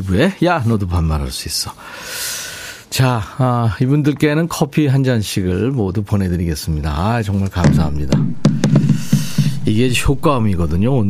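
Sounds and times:
speech: 0.0s - 11.0s
apple dropping onto a wooden floor with a hollow thump: 7.6s - 9.6s.

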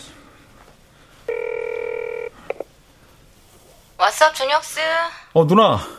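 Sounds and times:
steady phone line tone: 1.3s - 2.6s
speech: 4.2s - 5.9s.

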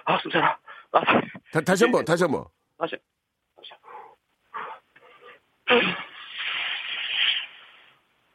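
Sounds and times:
speech: 0.1s - 3.1s, 5.7s - 6.1s
person imitating air escaping from a deflating tire: 5.6s - 7.9s.

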